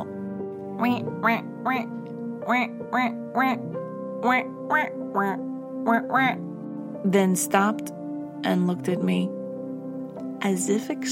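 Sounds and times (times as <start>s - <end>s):
ducks quacking a Christmas carol tune: 0.8s - 3.6s, 4.2s - 6.4s
speech: 0.8s - 9.4s, 10.4s - 11.1s.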